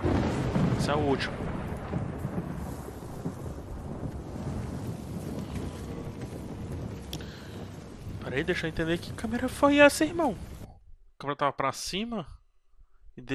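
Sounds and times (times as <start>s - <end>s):
heavy rain in a video game scene: 0.0s - 10.7s
deep constant rumble: 0.0s - 10.8s
speech: 0.8s - 1.4s, 8.4s - 10.5s, 11.2s - 12.4s, 13.2s - 13.3s.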